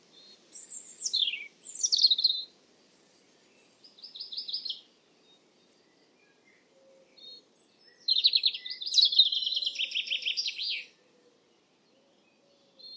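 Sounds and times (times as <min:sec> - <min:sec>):
European robin song of whistles, trills and warbling: 0:00.0 - 0:02.5, 0:03.2 - 0:12.9.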